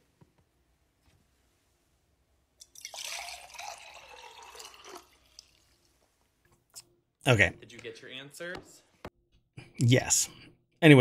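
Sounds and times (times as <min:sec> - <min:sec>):
faint water drips: 0:02.6 - 0:06.0
speech: 0:07.3 - 0:08.9, 0:09.8 - 0:10.9.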